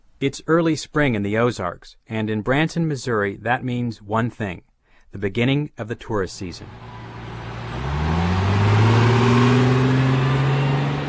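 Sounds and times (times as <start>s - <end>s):
speech: 0.2s - 7.0s
tour bus engine accelerating on the Highway 76 strip in Branson, Missouri: 6.5s - 11.0s.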